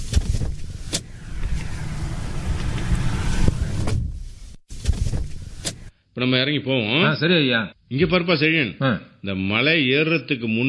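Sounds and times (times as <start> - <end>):
car engine rumbling while pulling over and stopping: 0.6 - 3.9
speech: 6.2 - 10.6.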